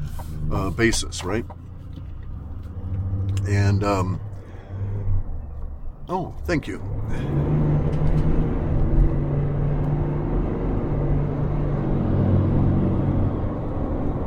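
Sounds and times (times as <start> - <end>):
car engine and tires on the road passing a pulled-over logging truck: 0.0 - 14.2
speech: 0.5 - 1.6, 3.5 - 4.3, 6.1 - 7.6.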